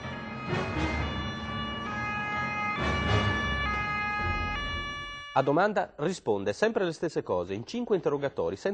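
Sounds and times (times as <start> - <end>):
carabinieri police car siren during chase on the Lungomare Duilio seafront in Ostia: 0.0 - 5.6
speech: 5.4 - 8.7.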